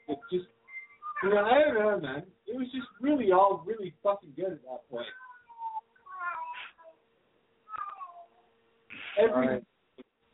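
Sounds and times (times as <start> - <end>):
speech: 0.3 - 0.5, 1.2 - 5.2, 9.2 - 9.7
cat in heat yowling: 5.0 - 6.9, 7.7 - 8.4.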